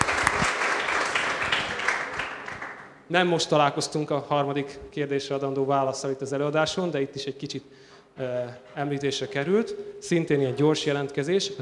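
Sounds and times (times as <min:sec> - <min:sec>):
lecture audience applause for a quiz winner: 0:00.0 - 0:03.0
sharp claps: 0:00.0 - 0:03.0
speech: 0:03.1 - 0:11.6.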